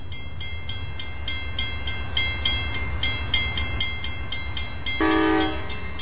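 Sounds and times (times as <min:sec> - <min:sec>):
Amtrak train engine rumbling: 0:00.0 - 0:06.0
loud blaring train horn: 0:05.0 - 0:05.9.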